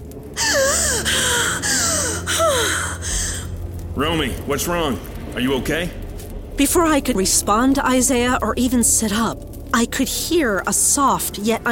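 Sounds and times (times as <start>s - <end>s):
sharp loud gasp for breath on bursting awake from sleep: 0.4s - 3.5s
speech: 4.0s - 6.0s, 6.6s - 11.7s.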